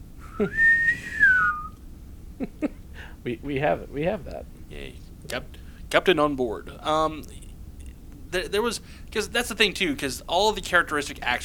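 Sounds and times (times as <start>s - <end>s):
speech: 0.4s - 1.2s, 2.4s - 7.4s, 8.3s - 11.4s
boatswain whistle call: 0.4s - 1.7s.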